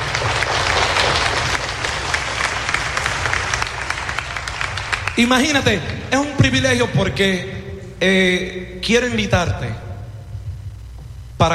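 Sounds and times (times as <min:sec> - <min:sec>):
audience at an event on a stage applauding: 0:00.0 - 0:05.9
speech: 0:05.2 - 0:09.9.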